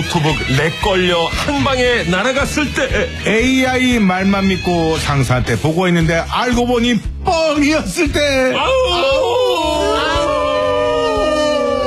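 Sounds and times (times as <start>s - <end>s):
speech: 0.0s - 9.4s
wolf howling: 9.1s - 11.8s.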